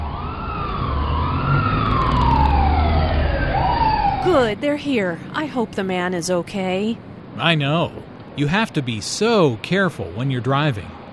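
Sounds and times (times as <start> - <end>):
ambulance and police car sirens wailing at a car accident: 0.0 - 10.8
steady low engine rumble: 0.0 - 11.1
speech: 4.2 - 11.0.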